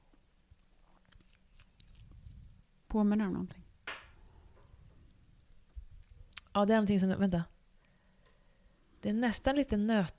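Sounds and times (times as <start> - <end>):
person sipping a drink: 0.8 - 2.6
wet mouth clicks: 1.0 - 2.2, 6.3 - 6.5
speech: 2.9 - 3.6, 6.6 - 7.5, 9.0 - 10.1.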